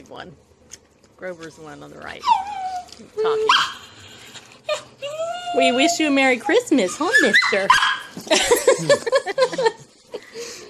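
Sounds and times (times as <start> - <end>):
speech: 0.1 - 3.8, 5.0 - 9.7
dog whimpering whine and sharp yelping bark: 2.2 - 8.2
laughter: 8.2 - 10.6.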